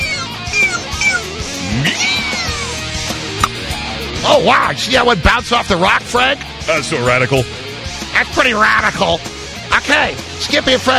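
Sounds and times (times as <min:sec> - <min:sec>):
kitten meowing: 0:00.0 - 0:02.8
speech: 0:04.3 - 0:07.6, 0:08.2 - 0:10.9.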